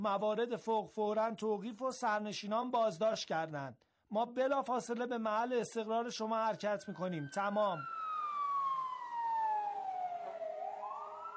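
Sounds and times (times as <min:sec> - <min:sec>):
speech: 0:00.0 - 0:08.0
police car siren wailing: 0:06.2 - 0:11.3.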